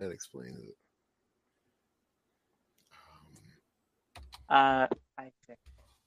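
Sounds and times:
speech: 0.0s - 0.9s, 4.5s - 5.7s
rapid computer keyboard typing: 4.2s - 4.5s.

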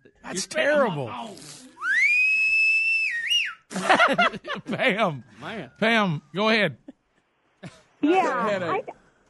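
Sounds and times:
speech: 0.3s - 1.6s, 3.8s - 6.8s, 7.6s - 9.0s
loud clear human whistle: 1.8s - 3.7s
burst of laughter: 3.7s - 5.2s.

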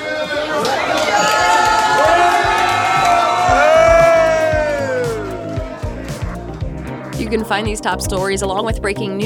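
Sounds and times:
crowd of football fans cheering and whooping in a restaurant: 0.0s - 6.3s
speech: 7.3s - 9.2s.

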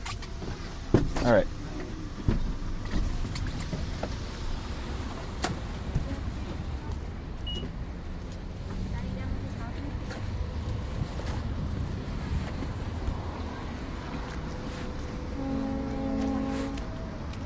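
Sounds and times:
ferry boat rumbling on the water: 0.0s - 17.4s
gusty wind: 0.5s - 17.4s
speech: 1.2s - 1.6s
low tonal blast: 14.8s - 17.2s.

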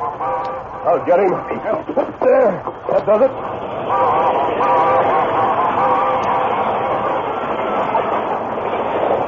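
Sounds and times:
speech: 0.8s - 5.2s
steam locomotive racing past on the rails: 3.0s - 9.2s
steam locomotive whistle pulled by the engineer: 3.9s - 6.4s.

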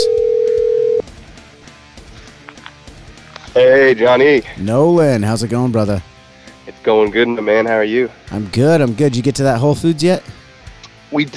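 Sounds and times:
telephone tone as a call is placed: 0.0s - 1.0s
speech: 3.6s - 6.1s, 6.8s - 10.4s, 11.1s - 11.3s.

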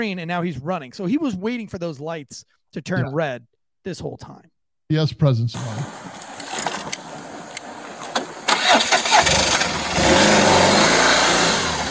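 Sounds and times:
speech: 0.0s - 6.3s
motorcycle engine starting and revving: 5.6s - 11.8s.

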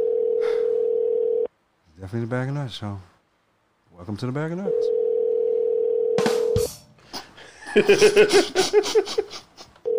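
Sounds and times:
telephone ringing tone of an unanswered call: 0.0s - 1.5s, 4.7s - 6.3s
speech: 2.0s - 3.1s, 4.0s - 5.0s, 7.7s - 9.5s
person giggling: 7.1s - 9.9s.

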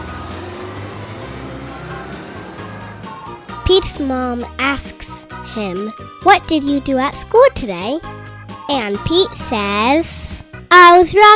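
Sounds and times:
bus engine rumbling: 0.0s - 5.9s
road noise from a bus: 0.0s - 6.3s
speech: 3.7s - 11.3s.

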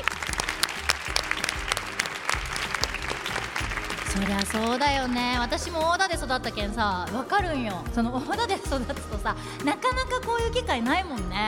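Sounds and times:
audience applause in a room: 0.0s - 5.8s
speech: 4.2s - 11.4s.

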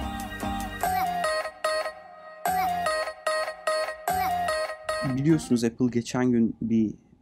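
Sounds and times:
bright electronic melody with steady bass: 0.0s - 5.8s
speech: 5.0s - 7.1s.

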